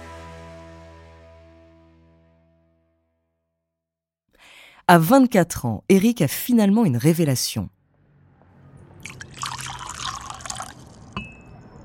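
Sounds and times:
speech: 4.9 - 7.8
tea dripping as paper is dipped in tea: 9.0 - 11.2.

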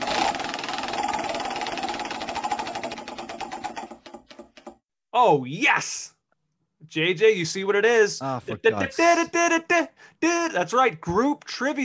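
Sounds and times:
prize wheel for choosing trivia categories spinning with rapid ticking clicks: 0.0 - 4.8
speech: 5.2 - 6.2, 6.9 - 11.8.

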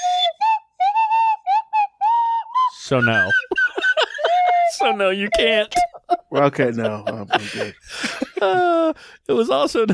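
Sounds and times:
slide whistle playing a short halting tune: 0.0 - 3.8
speech: 2.9 - 3.6, 4.7 - 9.9
laughter: 3.3 - 9.0.

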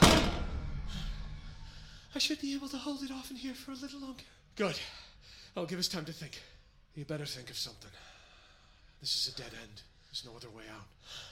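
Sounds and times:
heavy thud of a door being shut in a hurry: 0.0 - 1.0
speech: 2.2 - 8.1, 9.0 - 11.3.

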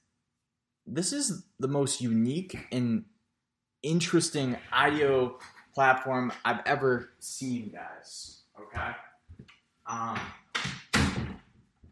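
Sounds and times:
speech: 0.9 - 3.1, 3.8 - 9.1, 9.9 - 10.4
door banging shut: 10.1 - 11.4.

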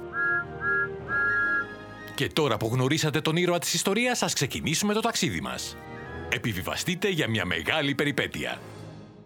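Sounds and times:
steam locomotive whistle blasts: 0.0 - 1.9
speech: 2.2 - 8.7.

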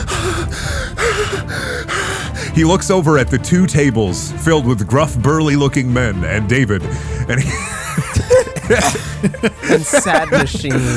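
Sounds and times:
flustered man breathing heavily with ragged wheezy gasps: 0.0 - 2.6, 10.7 - 10.9
speech: 2.6 - 7.8, 8.7 - 10.9
laughter: 7.3 - 10.9.

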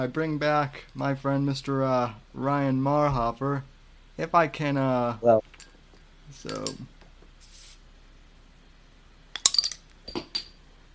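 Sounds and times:
speech: 0.0 - 5.7, 6.3 - 6.9
glasses clinking in a toast: 6.4 - 6.9, 9.4 - 10.6.

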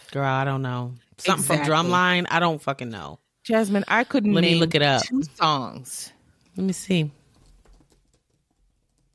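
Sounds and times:
speech: 0.1 - 7.2
typing on a computer keyboard: 7.3 - 9.1.

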